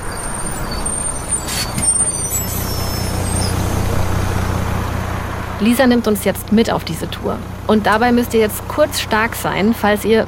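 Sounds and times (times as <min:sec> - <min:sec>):
bus air brakes hissing: 0:00.0 - 0:04.2
bus engine idling at a nuclear power plant site: 0:00.0 - 0:10.2
speech: 0:05.6 - 0:10.2.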